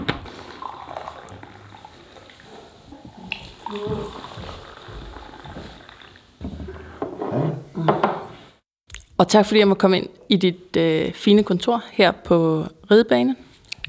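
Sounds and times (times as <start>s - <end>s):
coffee pouring into a cup in an office: 0.2s - 6.3s
soft drips of coffee: 0.3s - 6.2s
speech: 9.2s - 13.8s.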